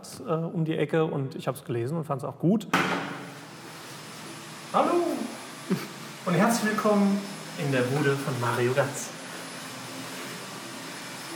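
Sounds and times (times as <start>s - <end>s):
speech: 0.0s - 3.3s, 4.7s - 5.1s, 5.7s - 9.2s
vacuum cleaner running: 2.8s - 11.3s.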